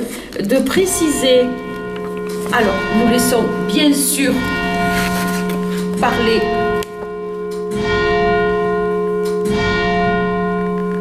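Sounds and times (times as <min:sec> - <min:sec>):
church bell ringing from a bell tower: 0:00.0 - 0:10.9
speech: 0:00.4 - 0:01.7, 0:02.5 - 0:04.6, 0:06.0 - 0:06.6.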